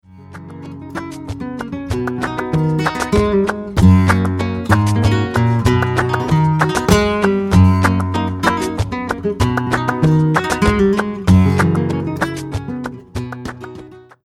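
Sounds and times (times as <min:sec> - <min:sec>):
guajira music: 0:00.2 - 0:14.2.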